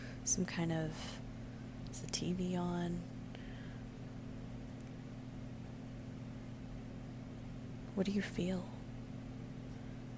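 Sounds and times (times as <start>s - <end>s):
air conditioner humming: 0.0s - 10.1s
speech: 0.3s - 1.3s, 2.0s - 3.2s, 8.0s - 8.8s.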